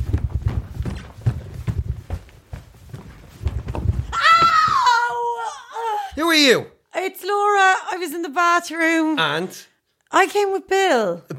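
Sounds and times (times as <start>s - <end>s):
footsteps running up a staircase: 0.0s - 5.3s
speech: 6.4s - 11.3s.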